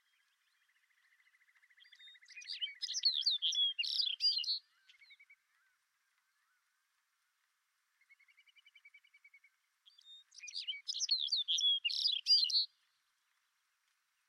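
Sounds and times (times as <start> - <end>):
Lapland longspur jingling twittering song in Greenland: 0.0 - 5.3, 9.9 - 12.8.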